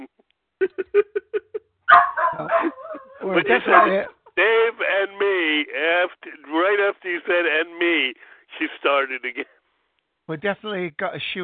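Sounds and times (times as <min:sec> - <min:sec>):
laughter: 0:00.6 - 0:01.6, 0:02.2 - 0:08.1
dog barking: 0:01.9 - 0:04.1
speech: 0:03.3 - 0:04.2, 0:09.0 - 0:09.6, 0:10.3 - 0:11.4.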